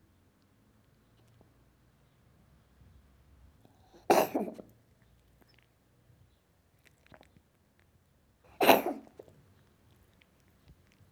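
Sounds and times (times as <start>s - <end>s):
cat coughing: 4.1s - 4.6s, 8.6s - 9.1s.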